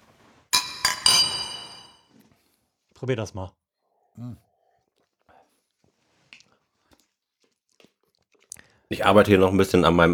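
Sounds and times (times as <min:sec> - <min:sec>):
glasses of IPA beer clinking in a toast: 0:00.6 - 0:02.0
speech: 0:03.0 - 0:03.6, 0:04.2 - 0:04.5, 0:08.9 - 0:10.1.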